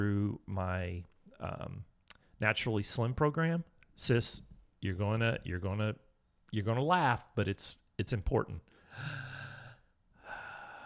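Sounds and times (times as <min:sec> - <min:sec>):
speech: 0:00.0 - 0:09.3
slow deep breath in through the nose: 0:08.7 - 0:10.8.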